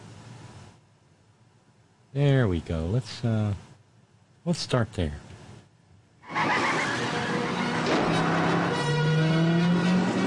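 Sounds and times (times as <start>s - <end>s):
speech: 2.1s - 3.7s, 4.4s - 5.3s
engine and road noise roaring as a car flips over: 6.2s - 10.2s
high thin tire squeal: 6.2s - 10.2s.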